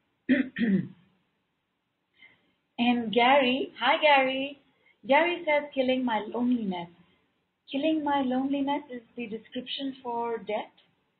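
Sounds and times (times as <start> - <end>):
person clearing throat: 0.3 - 1.0
speech: 0.3 - 1.0, 2.8 - 7.0, 7.7 - 10.8.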